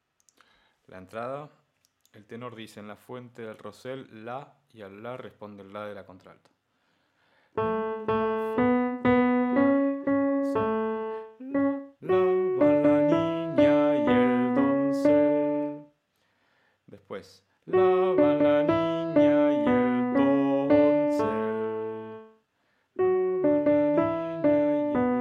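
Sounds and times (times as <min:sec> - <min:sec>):
contralto singing passages: 0:07.6 - 0:15.8, 0:17.7 - 0:22.4, 0:23.0 - 0:25.1.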